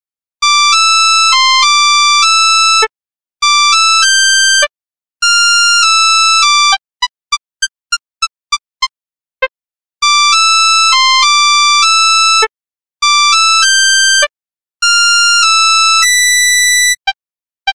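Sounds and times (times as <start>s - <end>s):
mono ringtone: 0.4s - 6.8s, 10.0s - 17.7s.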